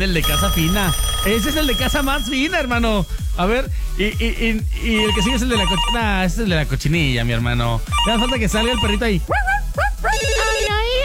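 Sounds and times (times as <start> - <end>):
speech: 0.0 - 9.5
phone ringtone for an incoming call: 0.2 - 3.5, 4.9 - 6.2, 7.9 - 9.1, 10.1 - 10.9.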